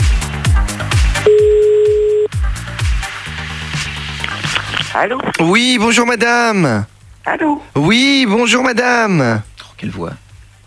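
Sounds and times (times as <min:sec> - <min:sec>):
rhythmic musical backing: 0:00.0 - 0:05.0
steady telephone beep: 0:01.3 - 0:02.3
telephone dialing tones: 0:01.3 - 0:02.3
speech: 0:05.0 - 0:10.2.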